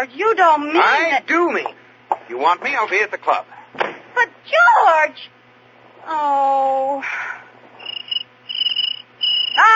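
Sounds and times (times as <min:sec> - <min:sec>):
speech: 0:00.0 - 0:05.4, 0:06.0 - 0:07.4
cricket chirping: 0:07.8 - 0:09.7.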